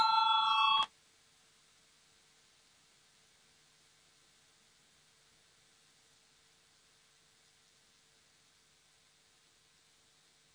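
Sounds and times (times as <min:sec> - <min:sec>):
parliamentary electronic voting bell ringing before a vote: 0:00.0 - 0:00.9.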